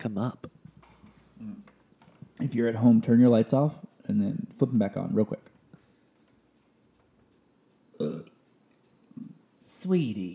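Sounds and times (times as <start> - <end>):
speech: 0.0 - 0.5, 2.4 - 5.5, 9.7 - 10.3
short loud gurgling burp: 7.9 - 8.5.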